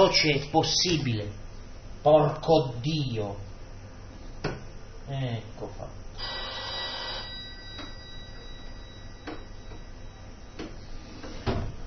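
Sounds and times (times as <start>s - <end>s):
speech: 0.0s - 1.4s, 2.0s - 3.5s, 5.1s - 6.4s
telephone ringing with a high-pitched tone: 6.2s - 10.6s.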